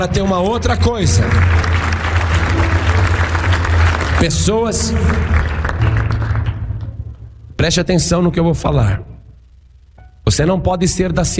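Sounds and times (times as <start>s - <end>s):
speech: 0.0s - 2.0s, 4.2s - 5.5s, 7.6s - 9.1s, 10.3s - 11.3s
congregation applauding at a worship service: 0.4s - 7.3s
strong low hum: 0.8s - 11.3s.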